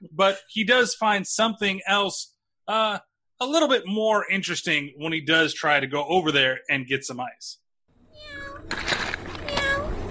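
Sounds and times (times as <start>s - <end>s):
speech: 0.2s - 7.6s
cat meowing: 8.1s - 10.0s.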